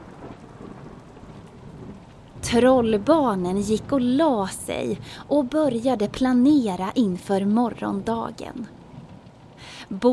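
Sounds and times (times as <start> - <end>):
low rolling thunder: 0.0 - 6.4
heavy rain: 0.0 - 10.1
speech: 2.4 - 8.8, 9.9 - 10.1.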